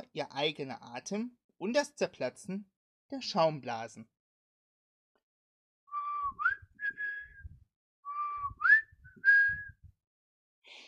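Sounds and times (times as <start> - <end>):
speech: 0.2 - 4.2
person whistling a short tune: 5.9 - 9.9.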